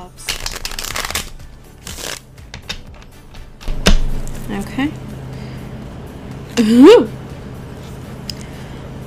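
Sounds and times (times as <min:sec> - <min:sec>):
tarot card deck being cut and shuffled: 0:00.2 - 0:03.1
speech: 0:04.5 - 0:05.1, 0:06.6 - 0:07.2.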